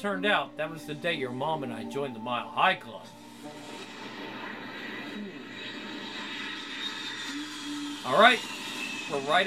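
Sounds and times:
speech: 0.0s - 3.8s, 8.0s - 9.4s
propeller airplane engine droning: 3.2s - 9.4s.

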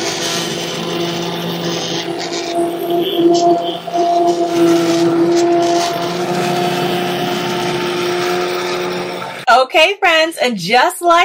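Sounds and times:
immersion blender churning through thick soup: 0.0s - 9.5s
speech: 9.8s - 11.2s.

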